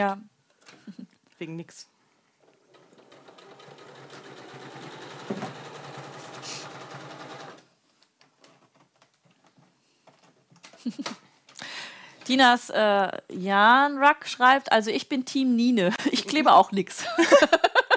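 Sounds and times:
speech: 0:00.0 - 0:00.3, 0:00.9 - 0:01.9, 0:10.8 - 0:11.2, 0:12.3 - 0:17.7
sewing machine stitching slowly over metallic fabric: 0:02.4 - 0:07.7
laughter: 0:17.0 - 0:17.9.

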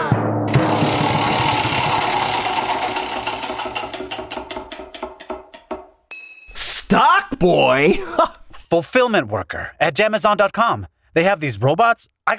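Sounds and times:
prize wheel spinning with clicker ticking: 0:00.8 - 0:05.7
speech: 0:06.9 - 0:12.3.

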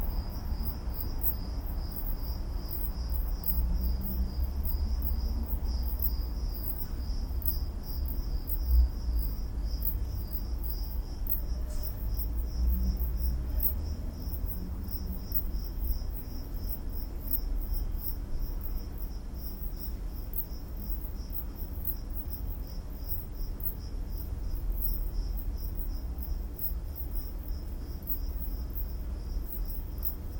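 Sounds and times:
continuous low rumble: 0:00.0 - 0:30.3
crickets chirping in a hotel courtyard in Odessa: 0:00.0 - 0:30.3.

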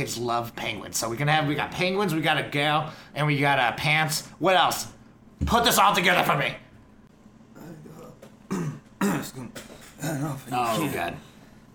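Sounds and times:
speech: 0:00.0 - 0:06.6, 0:09.2 - 0:11.3
person clearing throat: 0:08.4 - 0:10.4
person coughing in harsh sputtering bursts: 0:08.5 - 0:10.4.

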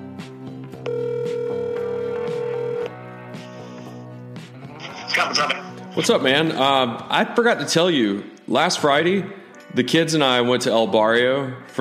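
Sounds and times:
faint music: 0:00.0 - 0:11.7
phone line ringback tone: 0:00.8 - 0:02.9
speech: 0:05.2 - 0:11.7.

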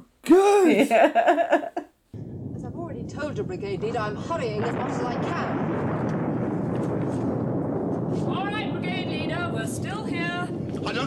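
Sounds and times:
laughter: 0:00.3 - 0:01.8
speech: 0:00.3 - 0:01.8, 0:03.1 - 0:06.2, 0:06.8 - 0:07.4, 0:08.1 - 0:11.0
explosions booming: 0:02.2 - 0:11.0.

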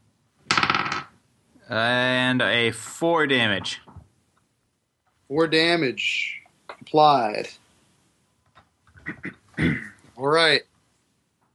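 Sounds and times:
dice tumbling across a hard tabletop: 0:00.4 - 0:01.2
speech: 0:01.7 - 0:03.9, 0:05.3 - 0:07.6, 0:09.1 - 0:10.7.

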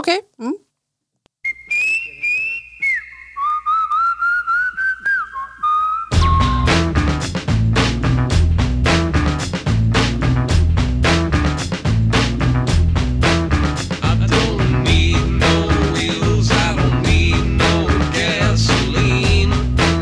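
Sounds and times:
speech: 0:00.0 - 0:00.6
person whistling a pop melody: 0:01.4 - 0:07.3, 0:14.8 - 0:20.0
full band with driving beat: 0:06.1 - 0:20.0.

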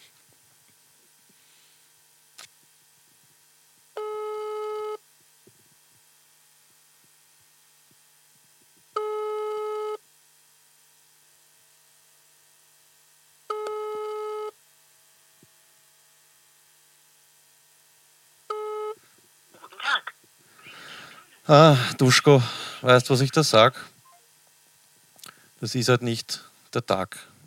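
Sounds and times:
telephone busy signal on an outgoing call: 0:04.0 - 0:05.0, 0:09.0 - 0:10.0, 0:13.5 - 0:14.6, 0:18.5 - 0:19.0
burst of voice: 0:19.6 - 0:20.1
speech: 0:21.5 - 0:23.9, 0:25.6 - 0:27.3.

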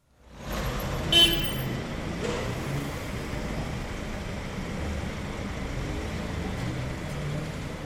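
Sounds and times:
busy street traffic with engines rumbling: 0:00.0 - 0:07.8
car horn toot: 0:01.1 - 0:01.7.

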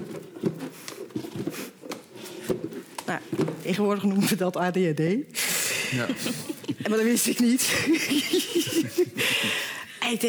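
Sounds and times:
wooden chair rocked back and forth on a hard floor: 0:00.0 - 0:04.3
speech: 0:03.1 - 0:10.2
laughter: 0:05.8 - 0:09.8.

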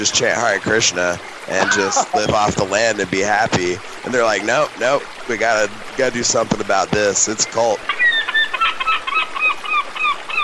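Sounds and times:
speech: 0:00.0 - 0:08.0
laughter: 0:01.5 - 0:02.4
seagull squawking: 0:07.9 - 0:10.4.

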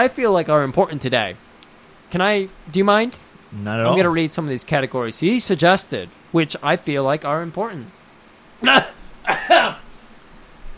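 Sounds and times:
speech: 0:00.0 - 0:01.5, 0:02.1 - 0:08.0, 0:08.6 - 0:09.8
short harsh coughs: 0:08.6 - 0:09.9.

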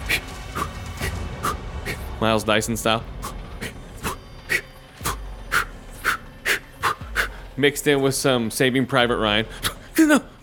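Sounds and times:
voice imitating heavy labored breathing: 0:00.0 - 0:02.1, 0:03.2 - 0:07.6
speech: 0:02.2 - 0:03.1, 0:07.6 - 0:10.4.

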